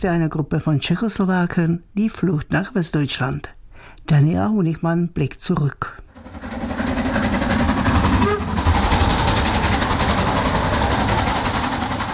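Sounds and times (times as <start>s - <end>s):
speech: 0.0s - 6.0s
steam train rumbling along rails with rhythmic chugging and clatter: 6.1s - 12.1s.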